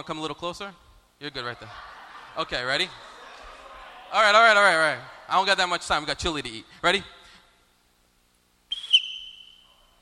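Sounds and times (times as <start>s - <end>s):
speech: 0.0s - 3.1s, 4.1s - 7.2s
laughter: 1.4s - 5.3s
sharp shrill whistle blast: 8.7s - 9.9s.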